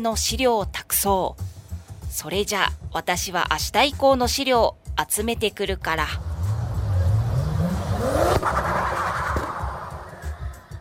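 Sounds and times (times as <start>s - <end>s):
speech: 0.0s - 1.5s, 2.1s - 6.3s
car engine revving and speeding away: 6.0s - 10.8s.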